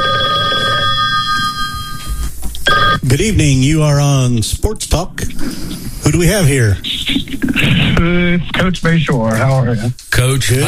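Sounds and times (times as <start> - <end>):
telephone ringing with an electronic ring tone: 0.0 - 3.0
speech: 3.1 - 10.6.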